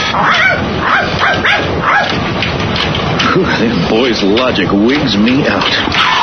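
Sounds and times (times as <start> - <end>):
small dog barking and yipping: 0.2 - 2.2
speech: 3.5 - 6.1.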